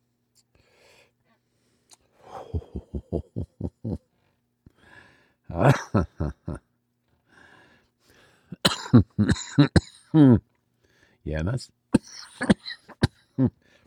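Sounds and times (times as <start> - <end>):
faint breath: 0.5 - 2.5, 4.2 - 5.4, 7.2 - 8.5, 10.8 - 11.2
speech: 5.6 - 6.4, 10.2 - 10.5, 11.3 - 11.8
person coughing harshly after inhaling cannabis concentrate: 8.6 - 10.4, 12.0 - 13.5.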